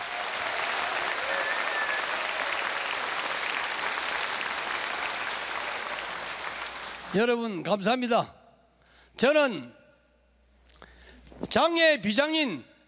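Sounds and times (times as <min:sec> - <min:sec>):
large audience applauding sponsors and teachers: 0:00.0 - 0:07.2
speech: 0:07.1 - 0:08.4, 0:09.2 - 0:09.8, 0:11.6 - 0:12.7.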